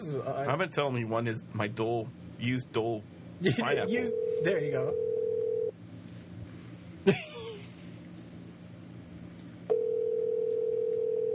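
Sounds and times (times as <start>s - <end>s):
speech: 0.1s - 5.1s, 7.0s - 7.4s
outgoing telephone call ringing tone: 4.1s - 5.7s, 9.7s - 11.3s.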